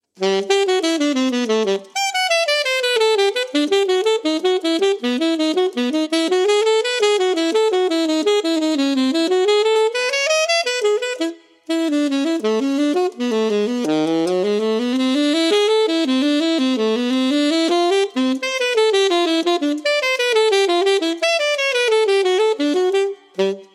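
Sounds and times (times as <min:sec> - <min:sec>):
alto sax playing shifting major scales: 0:00.0 - 0:23.7.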